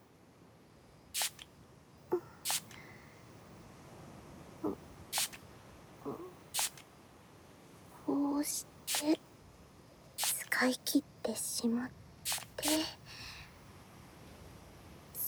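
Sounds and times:
small portable spray bottle spritzing alcohol sanitizer onto hands: 0:01.2 - 0:01.5, 0:02.1 - 0:03.0, 0:05.1 - 0:05.5, 0:06.5 - 0:06.8, 0:08.9 - 0:09.2, 0:10.2 - 0:10.6, 0:12.3 - 0:13.0
speech: 0:10.6 - 0:12.0.

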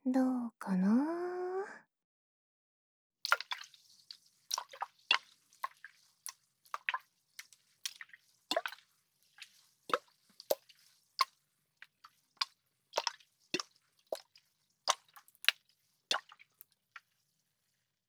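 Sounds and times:
speech: 0:00.1 - 0:00.9
small water drips: 0:03.2 - 0:17.3
soft sloshing water splashes: 0:03.3 - 0:11.4.

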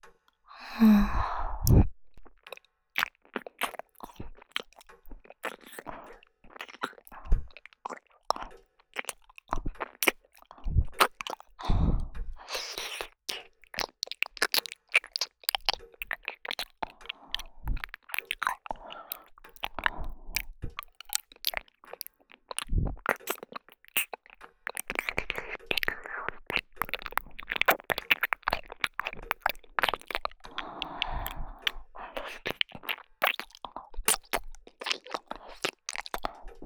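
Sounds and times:
person sighing: 0:00.6 - 0:01.4
person chewing a mandarin orange: 0:00.6 - 0:36.6.

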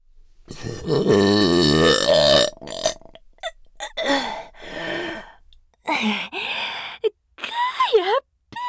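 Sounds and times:
breathy vocal bursts and gasps: 0:00.4 - 0:08.6
speech: 0:00.5 - 0:02.8
very loud drawn-out burp: 0:00.5 - 0:04.5.

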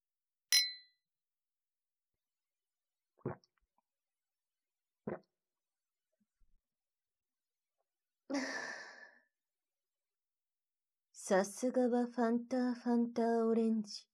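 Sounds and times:
two wine glasses clinking in a toast: 0:00.6 - 0:00.8
speech: 0:03.2 - 0:03.5, 0:11.3 - 0:14.1.

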